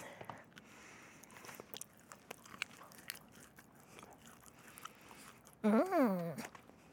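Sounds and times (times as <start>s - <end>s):
crunching and chewing cookies: 0.1s - 6.9s
brief louder voiced hum: 5.6s - 6.5s.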